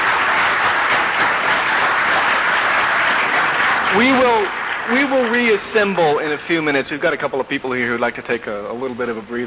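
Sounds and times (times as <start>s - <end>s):
large audience applause: 0.0s - 6.6s
speech: 4.0s - 9.4s.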